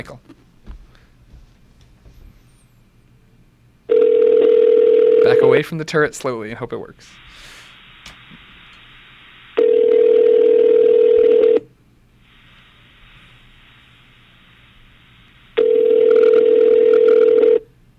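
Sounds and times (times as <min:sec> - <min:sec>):
speech: 0:00.0 - 0:00.4, 0:05.6 - 0:07.5
outgoing phone call ringback tones ringing through toward voicemail: 0:03.9 - 0:05.6, 0:09.6 - 0:11.7, 0:15.6 - 0:17.7.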